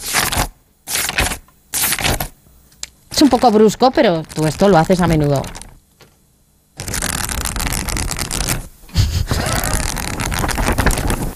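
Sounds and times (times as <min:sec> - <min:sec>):
book pages being flipped quickly: 0:00.0 - 0:02.3, 0:03.2 - 0:06.1, 0:06.8 - 0:08.7, 0:09.4 - 0:11.3
speech: 0:03.2 - 0:05.6.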